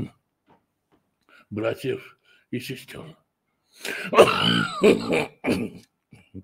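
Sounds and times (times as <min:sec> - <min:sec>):
speech: 0:01.5 - 0:03.2, 0:03.8 - 0:06.4
man clearing throat in harsh bursts: 0:03.9 - 0:06.4.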